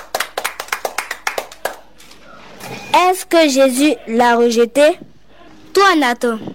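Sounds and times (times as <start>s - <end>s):
children clapping during a Bible lesson: 0.0s - 1.9s
speech: 2.9s - 5.1s, 5.8s - 6.5s.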